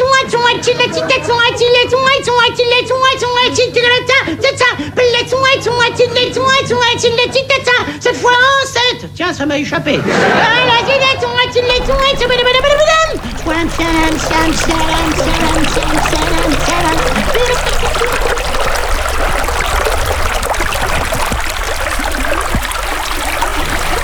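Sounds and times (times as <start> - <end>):
speech: 0.2 - 12.5, 13.7 - 16.7
small stream trickling through a garden: 11.7 - 24.0.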